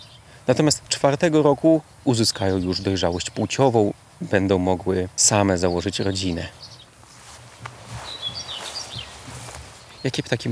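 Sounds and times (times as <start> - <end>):
common whitethroat calling with scratchy high-pitched chirps: 0.0 - 10.5
speech: 0.5 - 6.7, 10.0 - 10.5
soft rustling noise: 6.5 - 10.2.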